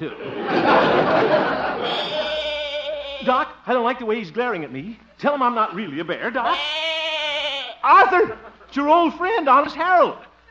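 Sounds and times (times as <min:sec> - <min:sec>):
speech: 0:00.0 - 0:00.4, 0:03.2 - 0:06.8, 0:07.8 - 0:10.5
laughter: 0:00.0 - 0:03.4, 0:07.9 - 0:09.1, 0:10.2 - 0:10.5
goat bleating: 0:01.8 - 0:03.4, 0:06.4 - 0:08.1.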